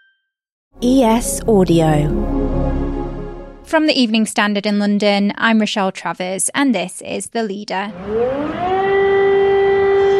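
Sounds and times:
speech: 0.8 - 2.4, 3.7 - 8.7
air raid siren wailing in the streets of Kiev, Ukraine: 0.8 - 3.7, 8.0 - 10.1.

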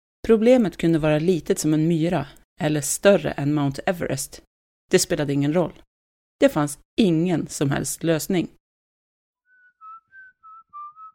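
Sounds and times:
speech: 0.3 - 8.6
man whistling a short tune outside a window: 9.5 - 11.1.

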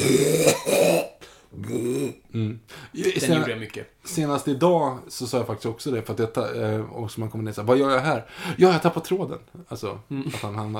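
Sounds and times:
person doing a comic imitation of coughing: 0.0 - 2.1
speech: 3.3 - 10.7.

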